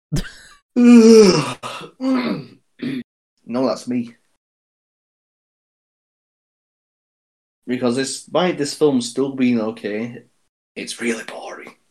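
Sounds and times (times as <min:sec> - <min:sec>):
speech: 0:00.1 - 0:01.4, 0:03.7 - 0:04.2, 0:07.7 - 0:11.8
person sighing: 0:00.2 - 0:03.0
person yawning: 0:00.8 - 0:03.0.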